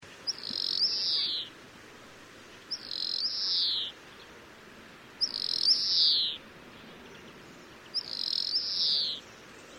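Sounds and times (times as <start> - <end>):
low background noise: 0.0 - 9.7
European greenfinch wheezing calls: 0.3 - 1.5, 2.7 - 4.0, 5.2 - 6.4, 7.9 - 9.2.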